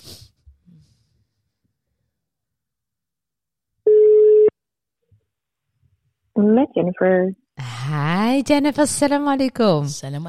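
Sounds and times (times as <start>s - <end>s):
telephone ringing tone as a call is dialled: 3.9s - 4.5s
speech: 6.4s - 10.2s.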